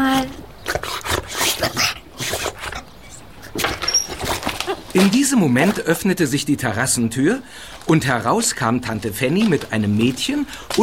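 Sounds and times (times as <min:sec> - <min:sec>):
dog whimpering with high breathy whines and snuffles: 0:01.6 - 0:05.0
speech: 0:05.0 - 0:10.8.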